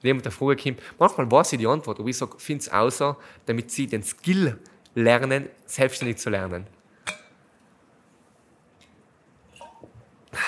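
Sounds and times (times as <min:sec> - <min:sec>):
speech: 0:00.0 - 0:07.2
glass of water clinking: 0:07.0 - 0:07.4, 0:09.5 - 0:10.0.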